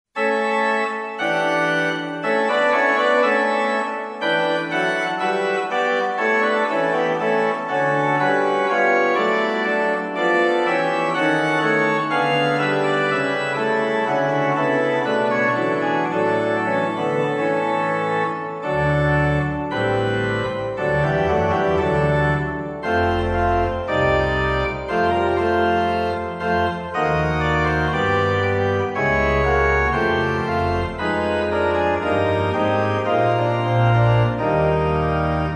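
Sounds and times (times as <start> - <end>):
organ playing a wedding march: 0.2 - 35.5.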